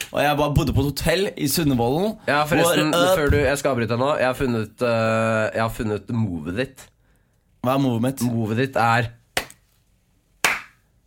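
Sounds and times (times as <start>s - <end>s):
hands clapping: 0.0s - 0.2s, 9.4s - 9.7s, 10.4s - 10.9s
speech: 0.1s - 6.9s, 7.6s - 9.2s.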